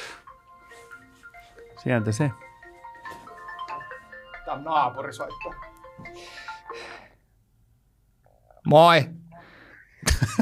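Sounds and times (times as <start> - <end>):
mobile phone ringtone playing a bright electronic melody: 0.0 - 7.1
speech: 1.8 - 2.5, 4.6 - 6.2, 8.7 - 9.2.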